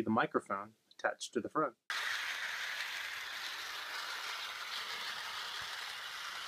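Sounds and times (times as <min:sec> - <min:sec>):
speech: 0:00.0 - 0:01.8
toy model train small motor and wheels whirring and rattling: 0:01.9 - 0:06.4.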